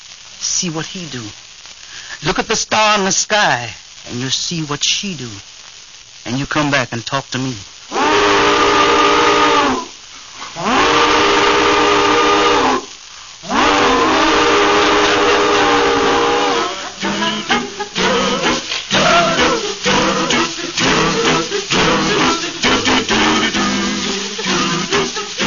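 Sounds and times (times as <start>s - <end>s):
bursts of hissing steam from steam engine: 0.0s - 25.4s
speech: 0.6s - 1.4s, 2.2s - 5.6s, 6.2s - 7.7s
steam train whistle blasts: 7.9s - 25.4s
steam engine rhythmic chuffing: 10.4s - 25.4s.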